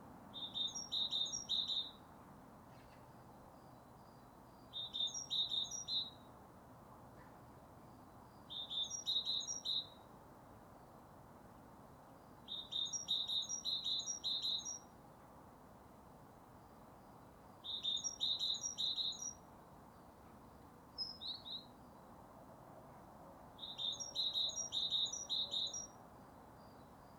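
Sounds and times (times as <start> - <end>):
great tit singing: 0.4 - 2.0, 3.6 - 6.2, 7.9 - 10.0, 12.4 - 14.9, 17.5 - 20.1, 23.6 - 26.0.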